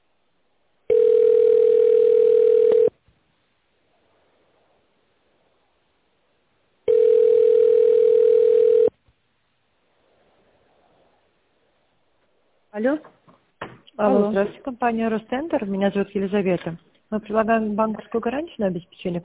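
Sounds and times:
telephone ringing tone while waiting for an answer: 0:00.9 - 0:03.0, 0:06.9 - 0:08.9
speech: 0:12.8 - 0:13.1, 0:14.0 - 0:19.2.

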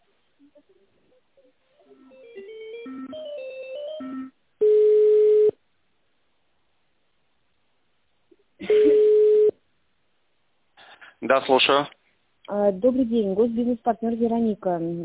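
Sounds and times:
telephone ringback tone while a call is transferred: 0:01.9 - 0:05.5, 0:08.7 - 0:09.5
speech: 0:11.3 - 0:15.0.

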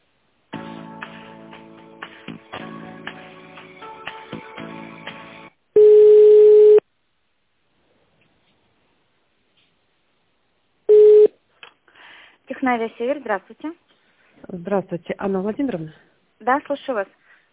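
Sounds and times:
steady phone line tone during a call transfer: 0:05.8 - 0:06.8, 0:10.9 - 0:11.3
speech: 0:12.6 - 0:13.9, 0:14.5 - 0:17.2.

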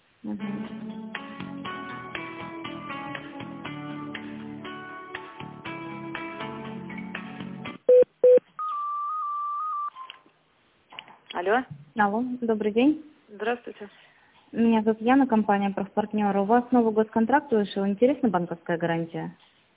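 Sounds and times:
speech: 0:00.2 - 0:01.2, 0:11.4 - 0:19.5
long steady telephone tone: 0:07.9 - 0:10.0
tinny hold melody on a telephone line during call transfer: 0:07.9 - 0:10.1.

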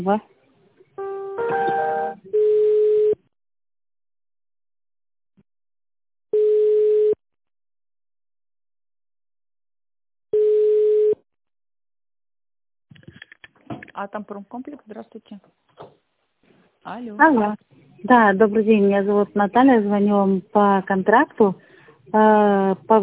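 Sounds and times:
speech: 0:00.0 - 0:00.3, 0:14.0 - 0:15.8, 0:16.8 - 0:23.0
long steady mid-pitched telephone beeps during call transfer: 0:01.5 - 0:03.2, 0:06.3 - 0:07.2, 0:10.4 - 0:11.2.

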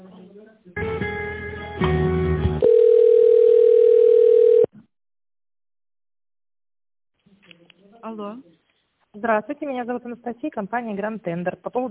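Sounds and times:
telephone line tones while a call is transferred: 0:02.6 - 0:04.7
speech: 0:09.2 - 0:11.8.

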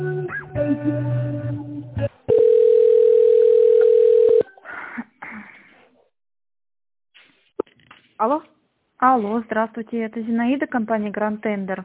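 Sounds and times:
speech: 0:00.6 - 0:01.3, 0:08.2 - 0:11.8
steady mid-pitched telephone line tone while a call is being transferred: 0:02.3 - 0:04.5.

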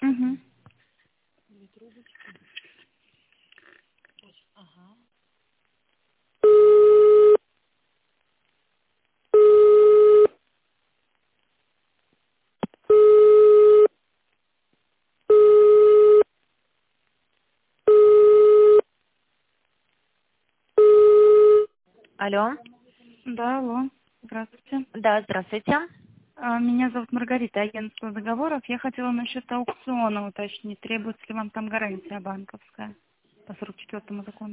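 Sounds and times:
telephone line tone while an office call is transferred: 0:06.4 - 0:07.4, 0:09.4 - 0:10.3, 0:12.9 - 0:13.9, 0:15.3 - 0:16.3, 0:17.9 - 0:18.8, 0:20.8 - 0:21.7
speech: 0:22.3 - 0:34.5.

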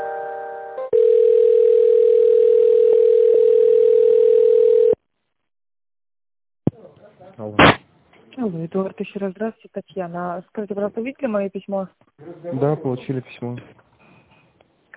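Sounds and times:
telephone line tone while an office call is transferred: 0:00.9 - 0:05.0
speech: 0:08.5 - 0:13.8.

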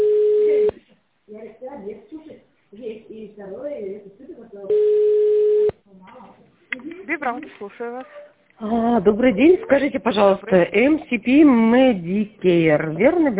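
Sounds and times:
telephone ringback tones while waiting for a company phone line to answer: 0:00.0 - 0:00.7, 0:04.7 - 0:05.7
speech: 0:03.4 - 0:05.0, 0:07.3 - 0:13.3.

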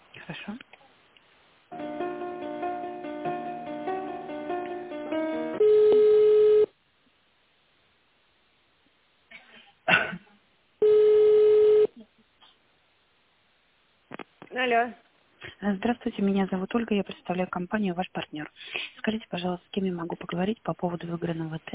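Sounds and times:
speech: 0:00.3 - 0:00.8, 0:14.6 - 0:15.0, 0:15.6 - 0:21.7
long steady telephone line beep during a call transfer: 0:05.6 - 0:06.7, 0:10.8 - 0:11.9.

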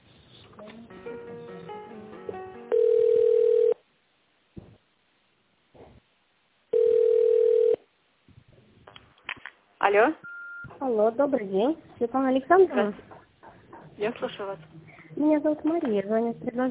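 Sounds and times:
telephone line tones while a call is being transferred: 0:02.6 - 0:03.8, 0:06.7 - 0:07.8
speech: 0:09.9 - 0:10.2, 0:10.8 - 0:13.1, 0:14.0 - 0:16.6.

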